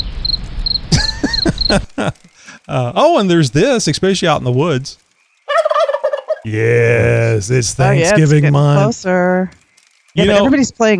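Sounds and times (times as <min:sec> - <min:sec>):
crickets chirping: 0:00.0 - 0:02.6
laughter: 0:00.9 - 0:03.2, 0:06.5 - 0:08.4
speech: 0:01.7 - 0:05.0, 0:06.4 - 0:10.9.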